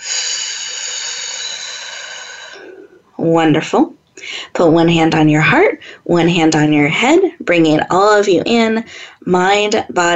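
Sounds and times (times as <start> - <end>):
deep breath exhaled through pursed lips during a breathing exercise: 0.0 - 3.1
speech: 3.2 - 10.1.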